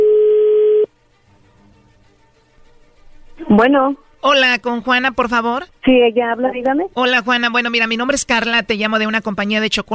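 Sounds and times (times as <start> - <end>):
steady telephone tone of a call being placed: 0.0 - 0.9
speech: 3.6 - 9.9.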